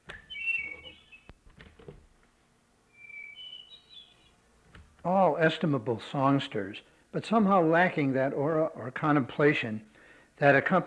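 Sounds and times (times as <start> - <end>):
hermit thrush singing clear fluting whistled phrases: 0.0 - 1.4, 2.9 - 4.3
faint background noise: 0.0 - 10.8
speech: 5.0 - 10.8.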